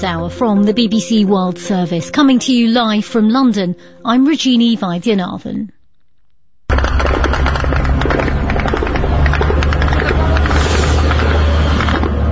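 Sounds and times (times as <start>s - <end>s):
speech: 0.0s - 5.8s
explosions from drone strikes on warehouses in Russia: 6.7s - 12.3s.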